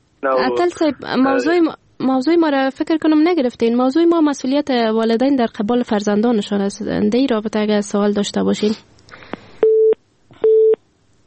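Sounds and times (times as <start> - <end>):
speech: 0.2 - 8.9
telephone busy tone after a caller's line drops: 9.6 - 10.8.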